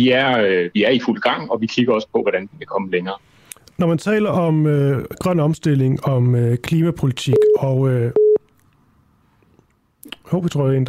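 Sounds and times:
speech: 0.0s - 8.2s, 10.3s - 10.8s
short loud electronic telephone tone: 7.3s - 7.6s, 8.2s - 8.4s.

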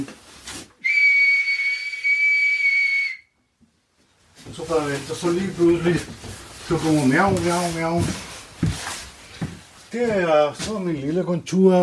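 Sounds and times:
person whistling a long high note to call a cat: 0.8s - 3.4s
speech: 4.6s - 8.3s, 9.9s - 11.8s.

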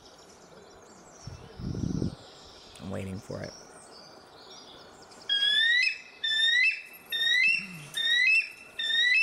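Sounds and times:
speech: 2.9s - 3.7s
bald eagle calling in thin high chirping beeps: 5.3s - 9.2s.

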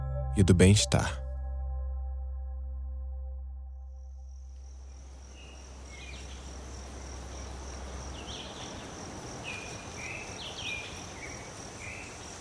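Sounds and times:
brief low drone: 0.0s - 8.3s
speech: 0.4s - 1.2s
high insect buzz in a forest canopy in Brazil: 4.2s - 12.3s
dense rustling hiss in a forest canopy: 4.6s - 12.3s.

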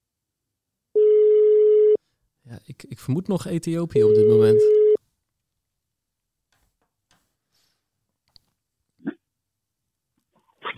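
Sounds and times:
steady telephone line tone while placing a call: 1.0s - 2.0s, 4.0s - 5.0s
speech: 2.5s - 4.8s.

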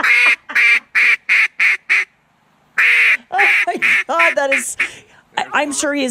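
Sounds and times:
duck call imitating an angry duck with harsh raspy quacks: 0.0s - 2.1s, 2.8s - 5.0s
speech: 4.4s - 6.0s.

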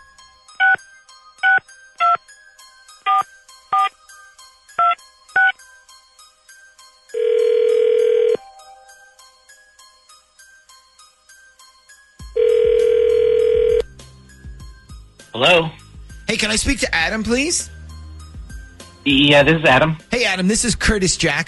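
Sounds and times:
crisp touch-tone beeps of a phone number being dialed: 0.6s - 0.8s, 1.4s - 2.2s, 3.1s - 3.9s, 12.4s - 13.8s
long loud telephone ringing tones: 7.2s - 8.4s, 12.4s - 13.8s
speech: 16.4s - 17.7s, 19.1s - 21.4s.

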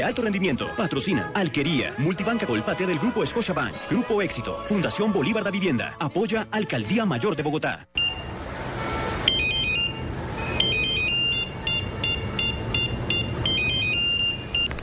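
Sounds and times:
speech: 0.0s - 8.0s
mobile phone ringtone with warbling electronic melody: 9.3s - 14.7s.

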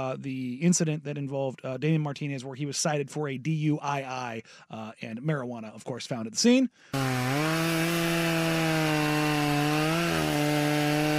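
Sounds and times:
speech: 0.0s - 8.6s
chainsaw engine droning and revving: 6.9s - 11.1s.

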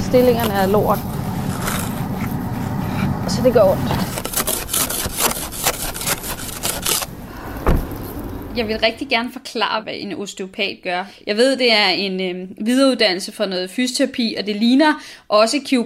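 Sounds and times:
scraping ice off a car windshield: 0.0s - 8.8s
speech: 0.1s - 1.2s, 3.4s - 4.1s, 8.6s - 15.8s.

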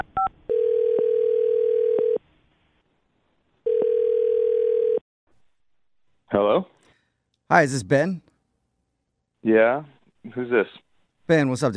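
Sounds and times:
telephone dial tone: 0.2s - 2.2s, 3.7s - 5.0s
speech: 6.3s - 6.7s, 7.5s - 8.3s, 9.5s - 11.7s.

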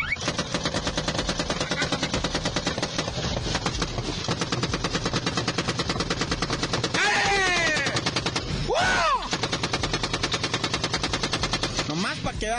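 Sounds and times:
7.62 caliber gas-operated automatic machine gun firing long rapid bursts: 0.0s - 12.2s
people shouting: 6.8s - 9.4s.

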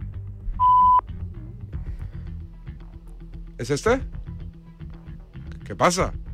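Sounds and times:
electronic ringing tone of a call to a mobile phone: 0.6s - 1.0s
speech: 3.6s - 4.2s, 5.7s - 6.2s.

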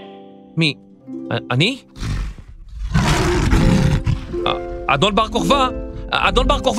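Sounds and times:
speech: 0.6s - 2.0s, 4.4s - 6.7s
lion roaring: 2.0s - 5.2s.

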